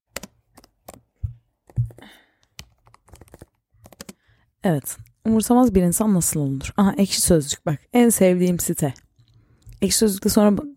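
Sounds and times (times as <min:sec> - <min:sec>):
typing on a computer keyboard: 0:00.1 - 0:04.2
speech: 0:04.6 - 0:09.0, 0:09.8 - 0:10.7.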